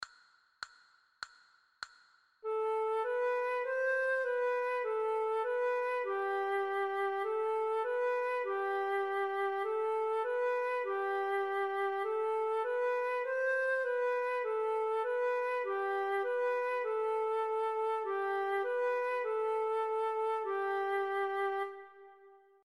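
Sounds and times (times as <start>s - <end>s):
recorder melody: 2.5s - 22.3s.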